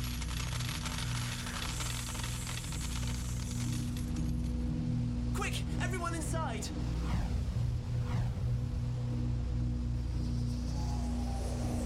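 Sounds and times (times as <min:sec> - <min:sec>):
metallic coins pouring out of a fruit machine into a tray: 0:00.0 - 0:04.1
low mechanical hum of a fruit machine: 0:00.0 - 0:11.8
speech: 0:05.5 - 0:07.3.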